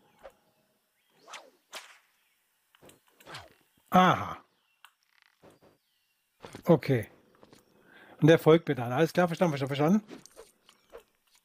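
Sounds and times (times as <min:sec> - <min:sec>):
video game whip whooshing swing: 0:01.2 - 0:02.0
video game whip cracking: 0:01.2 - 0:02.1
speech: 0:03.9 - 0:04.4, 0:06.7 - 0:07.2, 0:08.2 - 0:10.3.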